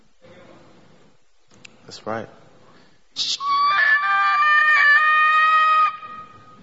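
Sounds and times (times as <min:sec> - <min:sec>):
speech: 0:01.9 - 0:02.4, 0:03.2 - 0:03.5
high-pitched scream: 0:03.2 - 0:06.6.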